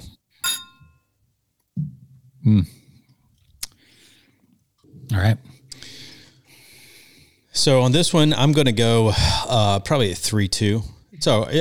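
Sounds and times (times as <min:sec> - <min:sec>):
glasses of maple bacon donut stout beer clinking in a toast: 0:00.4 - 0:01.0
speech: 0:02.4 - 0:02.8, 0:05.2 - 0:05.6, 0:07.6 - 0:11.6.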